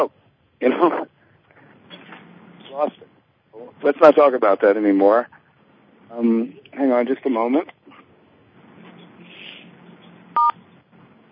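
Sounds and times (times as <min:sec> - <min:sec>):
speech: 0:00.0 - 0:01.1, 0:02.8 - 0:05.4, 0:06.1 - 0:07.8
faint steady low hiss: 0:00.0 - 0:11.3
electronic phone keypad tone muting conference callers: 0:10.4 - 0:10.6.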